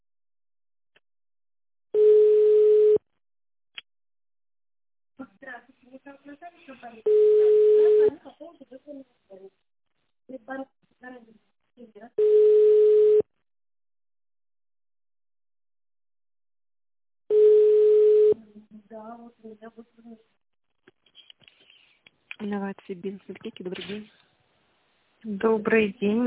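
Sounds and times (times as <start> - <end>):
telephone ringing tone: 2.0 - 3.0, 7.1 - 8.1, 12.2 - 13.3, 17.3 - 18.4
speech: 6.0 - 9.6, 10.3 - 13.0, 18.9 - 20.4, 22.4 - 24.2, 25.2 - 26.2.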